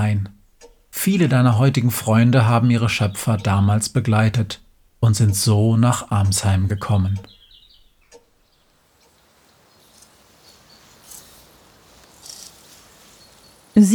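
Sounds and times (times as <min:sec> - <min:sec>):
speech: 0:00.0 - 0:00.4, 0:01.0 - 0:07.4, 0:13.8 - 0:13.9
soft hiss: 0:00.0 - 0:13.9
crickets chirping in tall grass in the evening: 0:08.3 - 0:13.8.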